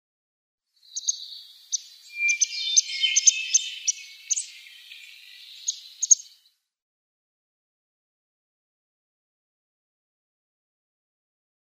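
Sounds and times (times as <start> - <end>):
Palm Warbler calls: 0.8 - 6.5.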